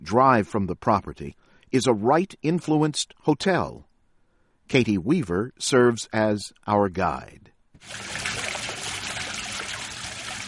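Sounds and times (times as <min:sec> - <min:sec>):
speech: 0:00.0 - 0:03.9, 0:04.7 - 0:08.4
fountain water splashing onto a hard surface: 0:07.8 - 0:10.4.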